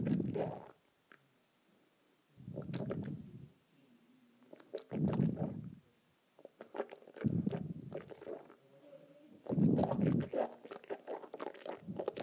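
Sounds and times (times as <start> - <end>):
water swishing around in a mouth: 2.5 - 3.3, 4.5 - 5.8, 6.5 - 8.6, 9.4 - 12.2.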